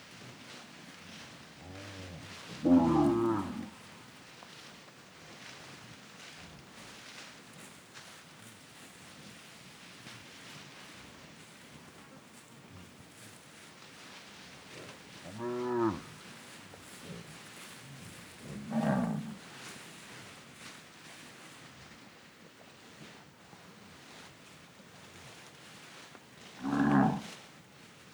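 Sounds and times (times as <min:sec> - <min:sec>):
cattle hooves walking on grass pasture: 0:00.0 - 0:28.1
soft rustling: 0:00.1 - 0:28.1
cattle mooing on grass pasture: 0:02.6 - 0:03.7, 0:15.3 - 0:16.1, 0:18.6 - 0:19.4.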